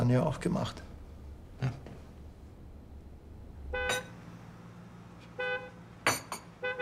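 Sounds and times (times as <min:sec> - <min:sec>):
speech: 0:00.1 - 0:00.9, 0:01.6 - 0:01.8
delivery vehicle horn honking: 0:03.7 - 0:04.2, 0:05.3 - 0:05.9, 0:06.6 - 0:06.8.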